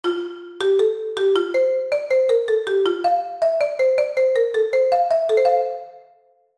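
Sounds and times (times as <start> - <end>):
marimba playing major intervals: 0.0 - 6.0.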